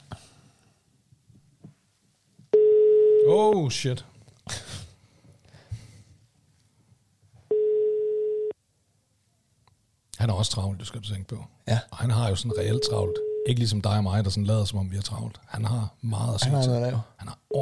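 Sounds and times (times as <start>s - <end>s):
telephone line ringback tones: 2.6s - 3.3s, 7.5s - 8.5s, 12.5s - 13.5s
speech: 3.3s - 4.1s, 10.4s - 17.6s.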